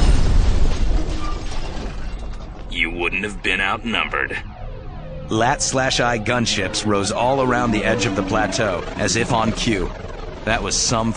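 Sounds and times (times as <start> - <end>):
missile explosion smashing into a position of droids: 0.0 - 1.9
speech: 3.0 - 4.5, 5.3 - 11.1.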